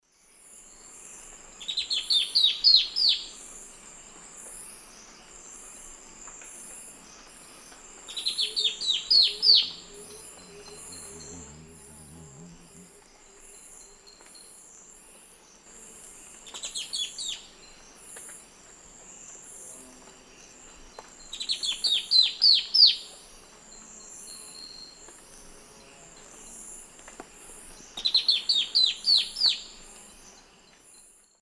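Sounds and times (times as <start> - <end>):
Myrmeciza atrothorax song in the Eastern Lowlands of South America: 0.6 - 3.4, 8.1 - 14.0, 16.4 - 18.0, 20.4 - 23.1, 27.7 - 31.4.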